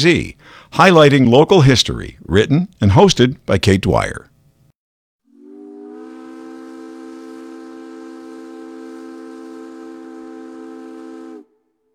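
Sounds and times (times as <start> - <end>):
speech: 0.0 - 4.3
Puget Sound ferry steam whistle blast: 5.3 - 11.9.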